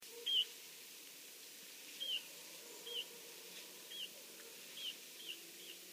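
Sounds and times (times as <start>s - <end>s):
background hiss: 0.0s - 5.9s
Eurasian bullfinch Pyrrhula pyrrhula whistled call notes: 0.2s - 0.5s, 2.0s - 2.2s, 4.8s - 5.8s.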